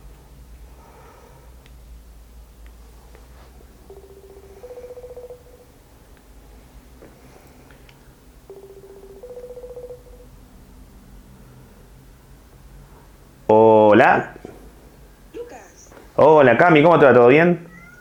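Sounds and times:
ringback tones from an outgoing phone call: 3.8s - 5.8s, 8.5s - 10.3s
speech: 13.5s - 14.4s, 16.2s - 17.7s.

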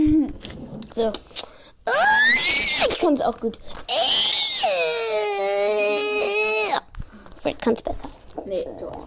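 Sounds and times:
speech: 1.0s - 2.0s, 3.0s - 3.8s, 7.4s - 9.0s
person's high-pitched shriek imitating a girl's scream: 1.9s - 2.9s, 3.9s - 6.8s.

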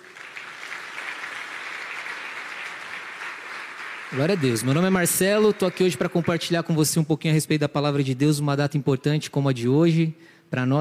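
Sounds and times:
audience applauding: 0.0s - 7.0s
speech: 4.1s - 10.7s.

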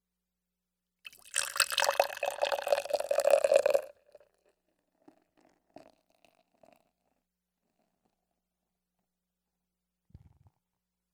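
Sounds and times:
IPA beer pouring into a glass: 1.1s - 4.3s.

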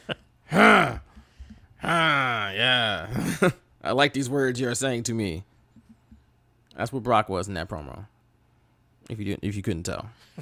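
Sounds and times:
man grunting and groaning: 0.5s - 1.1s, 1.8s - 3.4s
speech: 3.0s - 5.5s, 6.8s - 8.1s, 9.1s - 10.4s.

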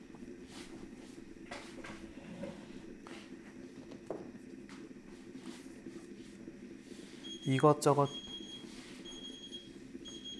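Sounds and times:
kitchen timer alarm with high-pitched electronic beeping: 7.2s - 10.3s
speech: 7.5s - 8.2s.

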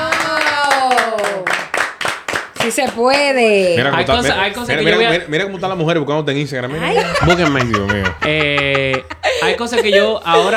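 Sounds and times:
hand clapping applause: 0.0s - 3.3s
speech: 2.6s - 10.5s
laughter: 6.7s - 10.5s.

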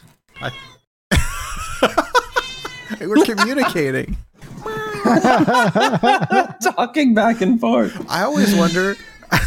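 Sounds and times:
cat meowing with chirping calls: 0.3s - 0.8s, 2.3s - 3.0s, 8.3s - 9.3s
speech: 0.4s - 0.8s, 3.0s - 4.2s, 5.1s - 9.1s
laughter: 1.1s - 9.4s.

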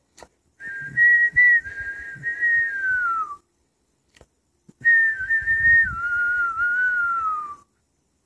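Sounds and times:
person whistling to imitate a little bird: 0.6s - 3.4s, 4.8s - 7.7s.

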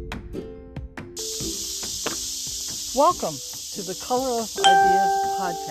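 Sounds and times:
cicadas chirping at a state park: 1.2s - 5.6s
speech: 2.9s - 5.6s.

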